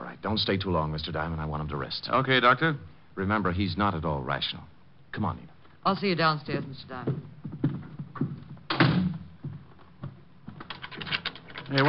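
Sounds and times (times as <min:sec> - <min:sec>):
speech: 0:00.2 - 0:07.8
door shutting with a solid thump: 0:08.7 - 0:09.2.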